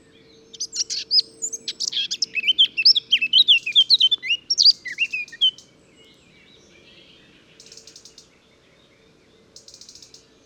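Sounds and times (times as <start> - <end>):
Eurasian blackcap singing warbling and fluting whistles: 0.6 - 5.6.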